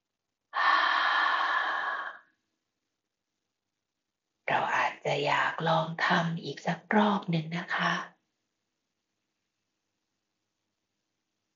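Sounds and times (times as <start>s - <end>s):
long exhale through the mouth during a guided breathing exercise: 0.6s - 2.2s
speech: 5.0s - 8.1s.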